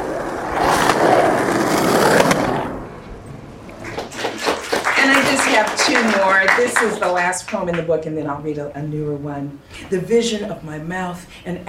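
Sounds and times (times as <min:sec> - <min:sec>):
skateboard wheels rolling across pavement at Venice Beach in Los Angeles: 0:00.0 - 0:07.0
speech: 0:05.9 - 0:11.6.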